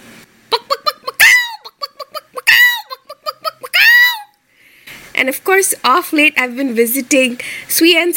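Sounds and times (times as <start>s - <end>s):
human voice imitating a hen in heat with clucks and squawks: 0.5s - 4.4s
speech: 5.2s - 8.1s.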